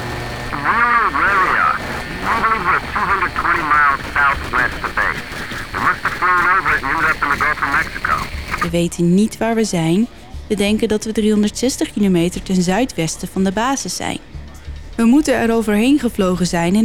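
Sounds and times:
navy pilot's distorted voice over radio transmission to control tower: 0.0 - 8.7
speech: 4.0 - 14.3, 15.0 - 16.8.

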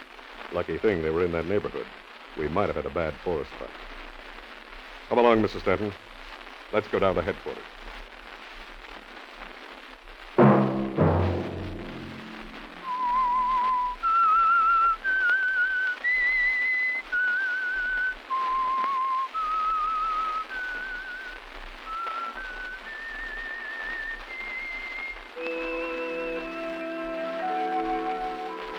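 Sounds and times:
speech: 0.5 - 3.9, 5.1 - 6.1, 6.7 - 7.8
bright instrumental phrase: 10.4 - 12.9
person whistling a melody: 12.8 - 21.3, 21.9 - 28.7.

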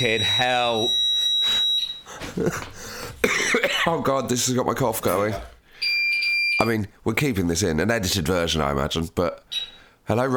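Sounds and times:
speech: 0.0 - 1.0, 2.4 - 3.0, 3.6 - 5.6, 6.6 - 10.3
house alarm high piercing electronic tone: 0.0 - 3.2, 5.7 - 6.8, 9.5 - 10.0.

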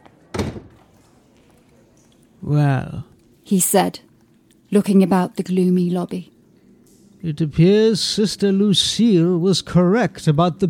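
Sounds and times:
door closing with a solid thunk: 0.3 - 0.9
speech: 2.5 - 4.1, 4.7 - 6.3, 7.2 - 10.6.

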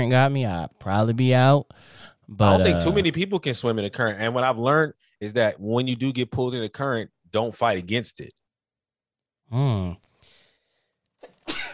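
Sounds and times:
speech: 0.0 - 8.4, 9.5 - 10.1
person sneezing: 11.2 - 11.7.

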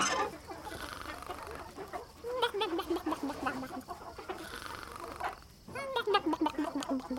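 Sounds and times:
drawn-out falling squawks of hens: 0.0 - 1.4
hens clucking in a chicken coop on a farm: 0.0 - 7.1
low farmyard murmur: 0.0 - 7.1.

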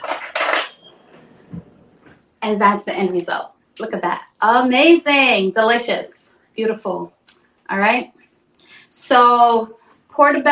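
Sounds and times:
cutlery clattering as a fork is taken from a kitchen utensil drawer: 0.0 - 0.9
speech: 2.4 - 8.2, 8.9 - 10.5.

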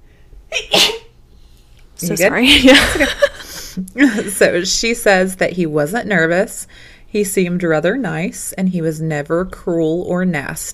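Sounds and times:
single sharp sneeze: 0.5 - 1.2
speech: 0.6 - 1.0, 2.0 - 10.7.

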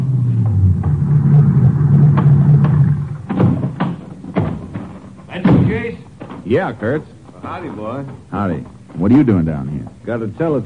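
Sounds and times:
ranger car engine rumbling as it pulls into a grove: 0.0 - 6.2
sharp clunks of doors or gear being handled: 2.0 - 6.5
speech: 6.5 - 10.6.

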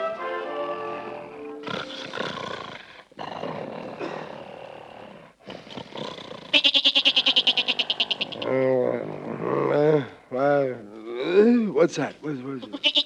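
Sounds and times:
rough vocal noise: 0.7 - 6.5, 7.3 - 12.8
goat bleating at night: 6.5 - 8.6, 12.5 - 13.0
speech: 11.9 - 12.8.

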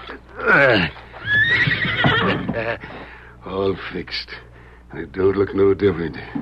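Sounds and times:
speech: 0.4 - 1.0, 2.6 - 6.3
horse whinnying while having its hoof fixed by a blacksmith: 0.4 - 2.8.

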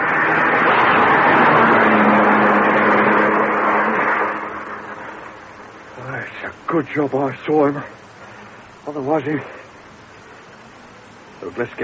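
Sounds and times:
car speeding past: 0.0 - 5.9
speech: 6.7 - 8.0, 8.9 - 9.6, 11.4 - 11.8.

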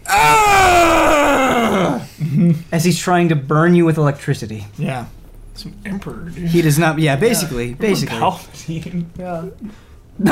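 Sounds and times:
person imitating a man screaming: 0.0 - 2.1
speech: 2.7 - 10.3.

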